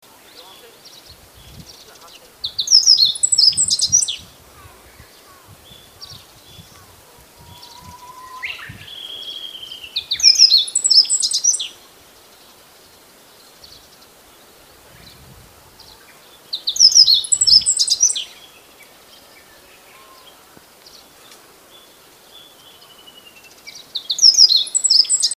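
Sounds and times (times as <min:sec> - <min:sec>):
Meadow bunting: 0:00.2 - 0:15.2, 0:15.8 - 0:25.3.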